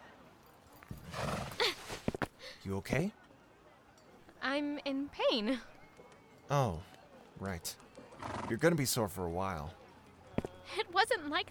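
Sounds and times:
horse whinnying: 1.0s - 2.0s
speech: 2.6s - 3.2s, 4.4s - 5.7s, 6.5s - 9.8s, 10.7s - 11.5s.

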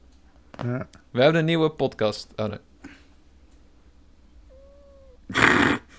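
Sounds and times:
speech: 0.6s - 2.7s
domestic cat meowing: 4.4s - 5.3s.

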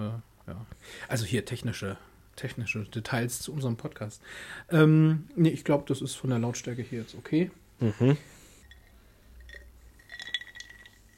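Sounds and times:
speech: 0.8s - 8.4s
ice cubes clinking and rattling against a glass: 8.7s - 11.1s.

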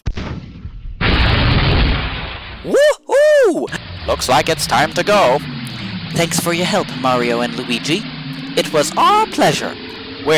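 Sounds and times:
missile firing in a video game: 0.0s - 2.7s
missile exploding in a video game with a loud dense roar: 0.0s - 10.3s
speech: 2.6s - 2.9s, 4.1s - 10.3s.

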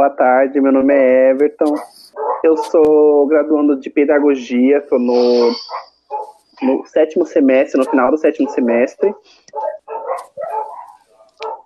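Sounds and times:
speech: 0.0s - 9.8s
dog barking: 1.7s - 2.8s, 5.6s - 6.4s, 7.7s - 11.6s.

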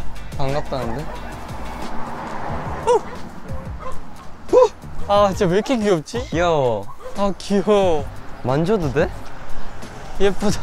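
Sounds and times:
speech: 0.4s - 1.2s, 5.1s - 9.2s, 10.2s - 10.6s
puppy yipping: 0.5s - 1.5s, 2.8s - 7.4s.

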